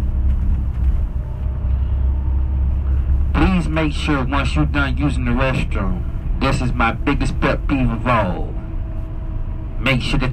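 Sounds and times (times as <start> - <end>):
faint rattles inside a moving coach bus: 0.0 - 3.3
engine and road noise rumble inside a moving coach bus: 0.0 - 10.3
speech: 3.7 - 8.6, 9.8 - 10.3.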